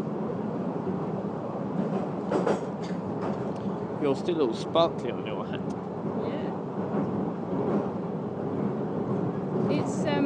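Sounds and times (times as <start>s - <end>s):
rumbling train noise on a platform: 0.0s - 10.2s
speech: 4.0s - 5.7s
recorded female-style voice announcement on a train station platform: 9.7s - 10.2s.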